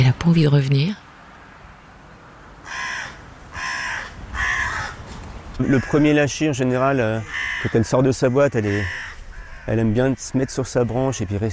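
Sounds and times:
faint outdoor noise: 0:00.0 - 0:11.5
speech: 0:00.1 - 0:01.0, 0:05.6 - 0:09.0, 0:09.6 - 0:11.5
crows cawing: 0:02.6 - 0:11.5.

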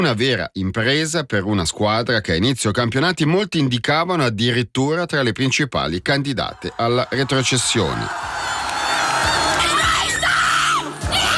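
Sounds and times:
speech: 0:00.0 - 0:08.4
football fans in Thun Switzerland screaming and cheering in celebration: 0:06.4 - 0:11.3.

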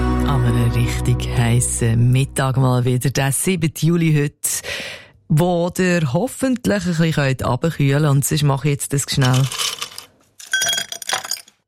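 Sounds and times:
speech: 0:00.3 - 0:09.8
ice cubes dropped into a glass: 0:09.2 - 0:11.6.

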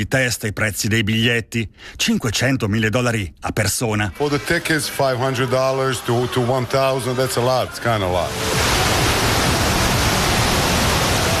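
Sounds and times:
speech: 0:00.0 - 0:08.9
ocean surf waves at a pier: 0:04.2 - 0:11.3.

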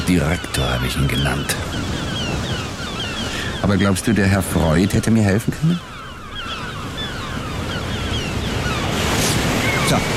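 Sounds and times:
gusting wind: 0:00.0 - 0:10.1
sea waves rolling onto sand: 0:00.0 - 0:10.1
speech: 0:00.1 - 0:02.2, 0:03.6 - 0:05.9
faint high chirping calls: 0:00.1 - 0:04.1, 0:05.7 - 0:09.0.

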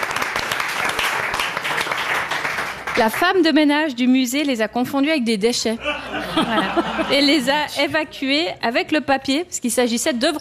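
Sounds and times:
quiz audience applauding: 0:00.0 - 0:03.4
speech: 0:03.0 - 0:10.3
laughter: 0:05.8 - 0:07.8.

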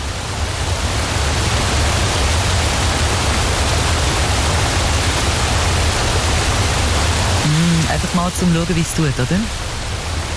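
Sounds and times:
waterfall rushing and spraying: 0:00.0 - 0:10.3
speech: 0:08.3 - 0:09.7.

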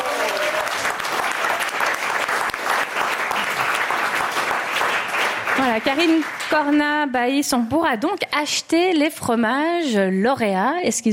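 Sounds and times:
audience applause in a room full of people: 0:00.0 - 0:07.0
speech: 0:05.7 - 0:11.1.

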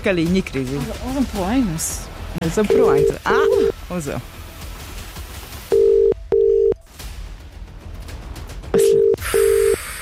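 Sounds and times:
speech: 0:00.0 - 0:04.4
electronic telephone tones of a number being dialed: 0:05.7 - 0:06.8, 0:08.8 - 0:09.8.

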